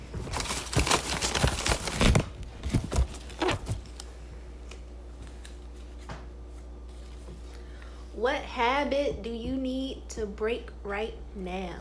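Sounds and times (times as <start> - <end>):
hand rummaging through a bag: 0.0 - 4.0
slips of paper rustling as drawn from a bag: 0.2 - 4.0
speech: 8.2 - 11.7.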